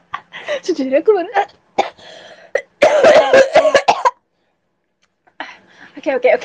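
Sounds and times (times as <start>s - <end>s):
speech: 0.7s - 1.7s, 6.0s - 6.4s
person with a sore throat coughing: 2.6s - 4.2s
person with a sore throat clearing their throat: 2.8s - 4.2s.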